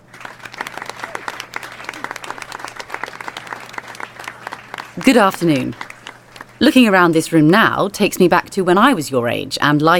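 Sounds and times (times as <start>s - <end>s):
room full of people applauding: 0.0s - 6.7s
speech: 5.0s - 5.9s, 6.6s - 9.9s.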